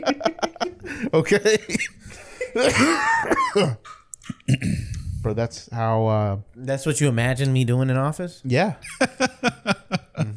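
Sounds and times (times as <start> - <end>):
laughter: 0.0 - 4.9, 8.8 - 10.3
speech: 1.1 - 9.5
man clearing his throat: 2.6 - 4.9.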